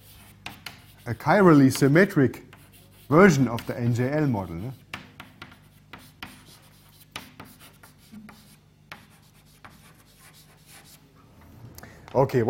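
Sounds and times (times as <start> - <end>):
writing strokes during a physics lecture: 0.0 - 11.0
speech: 1.0 - 2.5, 3.1 - 4.8, 12.2 - 12.4.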